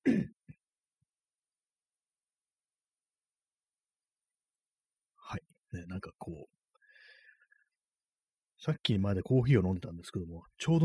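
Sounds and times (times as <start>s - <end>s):
throat clearing: 0.0s - 0.6s
speech: 8.6s - 10.8s.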